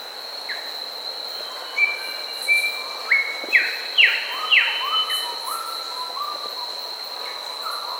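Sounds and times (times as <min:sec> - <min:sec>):
Grey Whistler song in Papua New Guinea: 0:01.8 - 0:06.4.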